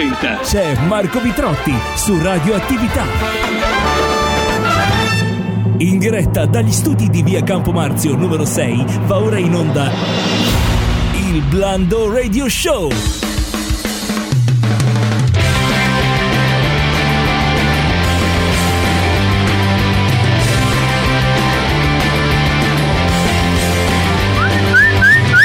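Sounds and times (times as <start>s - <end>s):
speech: 0.0s - 4.1s, 5.8s - 10.6s, 11.3s - 13.3s
dense full instrumental backing: 0.0s - 5.8s, 12.9s - 25.4s
person whistling imitating the wind: 24.3s - 25.4s.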